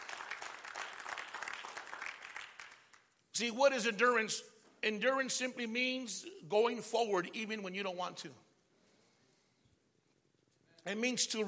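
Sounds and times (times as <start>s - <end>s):
audience clapping during a sermon: 0.0s - 3.2s
speech: 3.4s - 8.4s, 10.8s - 11.4s.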